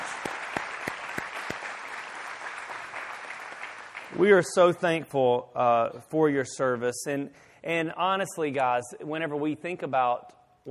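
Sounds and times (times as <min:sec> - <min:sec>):
audience clapping steadily: 0:00.0 - 0:04.7
speech: 0:04.2 - 0:10.6.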